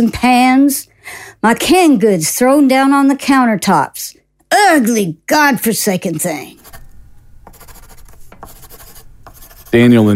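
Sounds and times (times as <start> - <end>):
speech: 0.0 - 6.6, 9.7 - 10.1
pen scribbling on a piece of paper: 6.0 - 6.8, 7.5 - 9.9.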